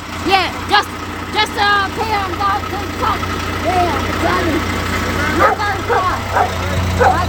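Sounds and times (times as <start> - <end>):
steady idling engine rumble: 0.0 - 7.2
speech: 0.2 - 4.8, 5.4 - 7.2
small dog barking in sharp high yaps: 5.4 - 7.2.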